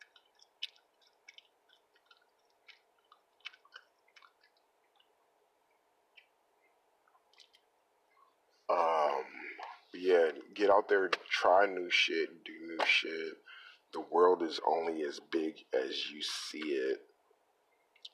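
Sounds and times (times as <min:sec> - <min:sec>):
wet chewing of gum: 0:00.0 - 0:05.3, 0:07.0 - 0:07.7
faint steady hum: 0:00.0 - 0:18.1
speech: 0:10.1 - 0:17.1.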